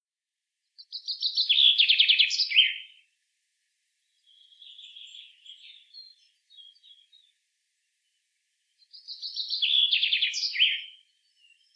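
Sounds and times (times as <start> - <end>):
Common chaffinch Fringilla coelebs singing a rattling downward-stepping phrase: 0.8 - 3.0, 4.2 - 7.3, 8.8 - 11.7.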